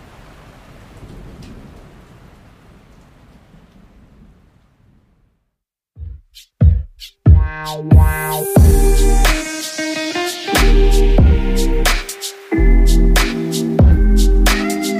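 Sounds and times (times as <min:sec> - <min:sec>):
steady night-time rain: 0:00.0 - 0:05.2, 0:08.6 - 0:14.9
low rolling thunder: 0:00.0 - 0:05.3
loud punchy musical hits: 0:07.3 - 0:14.8.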